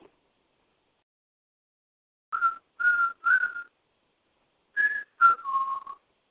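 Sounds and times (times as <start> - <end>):
short whistled notes: 2.4 - 3.7, 4.8 - 6.0.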